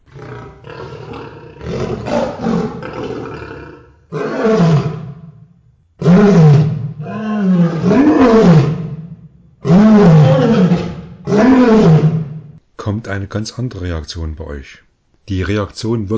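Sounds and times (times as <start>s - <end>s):
lion roaring: 0.0s - 12.6s
speech: 13.1s - 16.1s.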